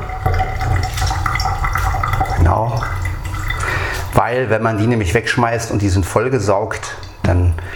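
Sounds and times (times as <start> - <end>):
water pouring out of bags: 0.0 - 4.2
water gurgling and dripping: 0.0 - 7.7
speech: 4.2 - 7.7.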